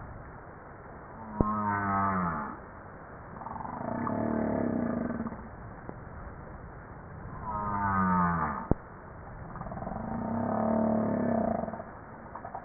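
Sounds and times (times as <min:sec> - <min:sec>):
humpback whale harmonic moans: 0:01.2 - 0:02.6, 0:03.4 - 0:05.5, 0:07.4 - 0:08.8, 0:09.6 - 0:11.9.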